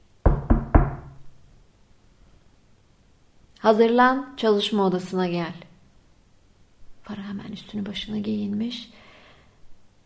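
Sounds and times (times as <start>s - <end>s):
firm knocks on a wooden door: 0.2s - 1.2s
speech: 3.6s - 5.7s, 7.1s - 9.0s.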